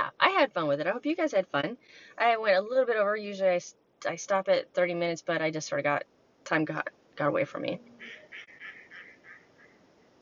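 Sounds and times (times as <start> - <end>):
speech: 0.4 - 8.2
ducks quacking: 7.9 - 9.8.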